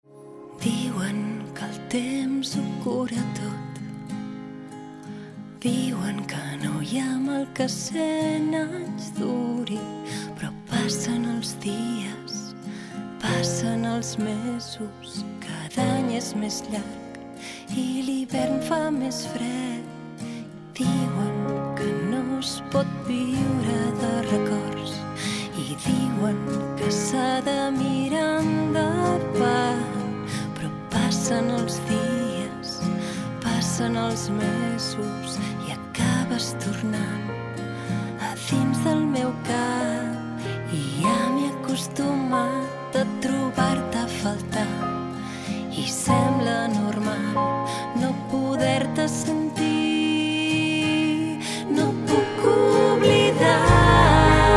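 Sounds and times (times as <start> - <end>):
Catalan woman singing pop song: 0.2 - 4.2, 5.4 - 54.5.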